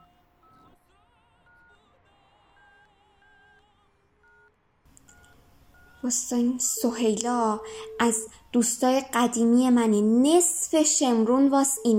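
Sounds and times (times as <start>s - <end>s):
hum: 4.9s - 11.9s
touch-tone beeps of a telephone number being dialled: 5.0s - 9.5s, 10.9s - 11.9s
speech: 6.0s - 11.9s.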